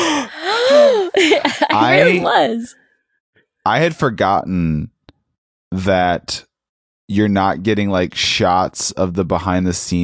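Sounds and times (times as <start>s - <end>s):
person acting out sharp breathy gasps of shock: 0.0s - 2.0s
laughter: 0.0s - 2.6s
speech: 1.8s - 2.8s, 3.6s - 4.9s, 5.7s - 6.5s, 7.1s - 10.0s.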